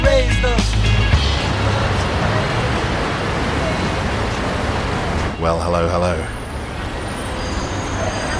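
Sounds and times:
dense road traffic on a city embankment: 0.1 - 8.3
speech: 5.7 - 6.4.

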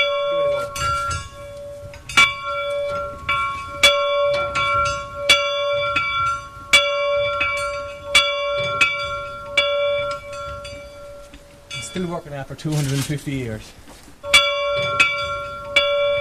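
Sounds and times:
old factory bell once used to summon workers, struck: 0.0 - 12.7, 14.2 - 16.1
speech: 12.2 - 13.8.

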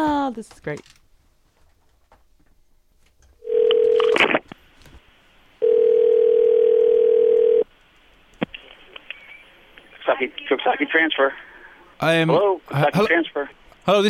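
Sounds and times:
speech: 0.3 - 1.0, 10.2 - 14.0
ringback tone on a phone call to a county solid waste transfer station: 3.4 - 4.3, 5.6 - 7.6.

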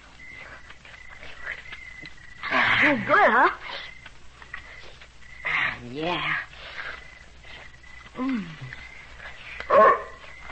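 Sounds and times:
low hum: 0.0 - 10.5
speech: 2.8 - 3.8, 5.8 - 6.5, 8.2 - 8.8
dog barking: 9.7 - 10.2.

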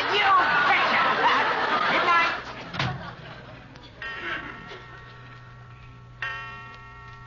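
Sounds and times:
laughter: 0.0 - 5.3
clock ticking: 3.7 - 7.2.

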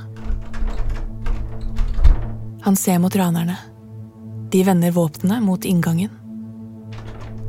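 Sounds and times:
door handle rattling: 0.0 - 2.7, 6.8 - 7.4
speech: 2.6 - 3.7, 4.5 - 6.2.

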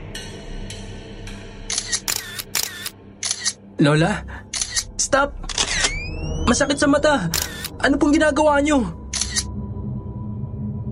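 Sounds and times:
DSLR camera shutter firing in rapid succession: 1.7 - 3.6, 4.6 - 4.9, 5.5 - 6.0, 7.4 - 7.7, 9.2 - 9.5
speech: 3.8 - 4.4, 5.0 - 5.5, 6.5 - 9.0.

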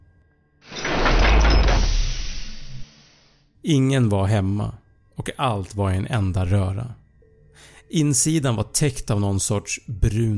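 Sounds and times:
spacecraft airlock door opening with a loud hissing rush: 0.7 - 3.4
speech: 3.7 - 7.0, 7.6 - 10.3.

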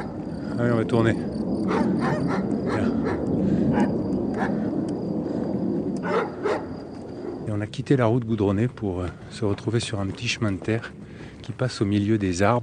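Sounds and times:
several dogs barking: 0.0 - 0.2, 1.6 - 4.7, 6.0 - 7.5
steady outdoor rumble: 0.0 - 12.6
speech: 0.6 - 3.1, 7.6 - 12.6.

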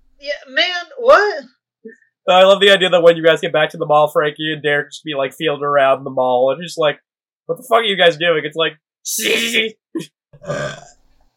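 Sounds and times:
speech: 2.3 - 11.0
burp let out in surprise: 9.3 - 11.1.

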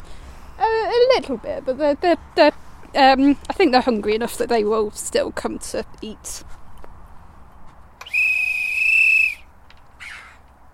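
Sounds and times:
speech: 1.2 - 6.6
feeding-time whistle blast calling choughs: 8.0 - 9.5.

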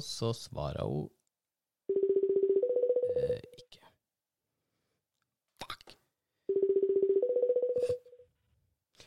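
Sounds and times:
speech: 0.0 - 1.2
telephone ringback tone: 1.9 - 3.4, 6.5 - 8.2.

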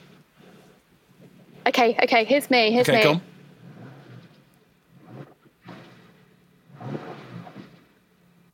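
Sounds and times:
speech: 1.6 - 3.3
car engine revving to a throaty roar and idling: 2.8 - 8.5.

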